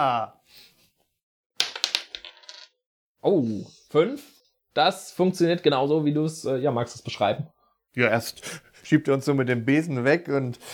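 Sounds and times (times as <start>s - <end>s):
speech: 0.0s - 0.7s, 3.2s - 10.7s
dice clattering onto a hard tabletop: 1.6s - 2.7s.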